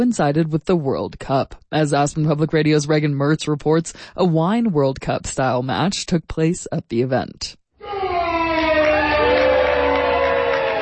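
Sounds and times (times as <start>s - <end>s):
speech: 0.0s - 7.6s
crowd cheering and whooping at a wine tasting event in Aspen: 7.8s - 10.8s.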